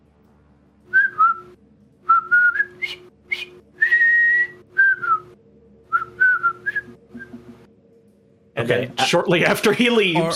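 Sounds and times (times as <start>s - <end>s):
person whistling a jolly tune: 0.9s - 1.5s, 2.1s - 5.3s, 5.9s - 7.4s
speech: 8.7s - 10.3s.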